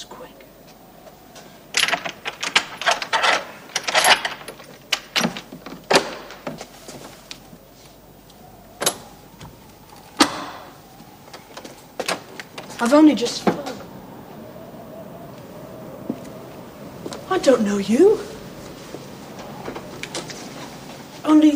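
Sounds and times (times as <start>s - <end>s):
metallic clicks and clunks of a lock being worked: 1.7s - 6.6s
speech: 12.8s - 13.5s, 17.4s - 18.3s.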